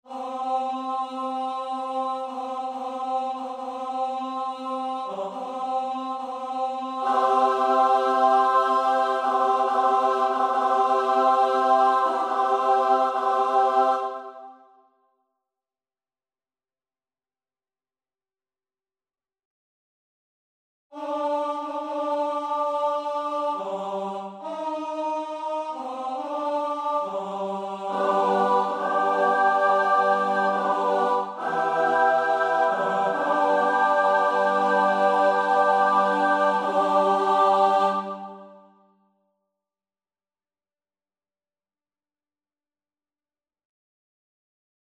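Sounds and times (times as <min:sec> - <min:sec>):
SATB four-part choir singing: 0:00.0 - 0:14.7, 0:21.0 - 0:38.7.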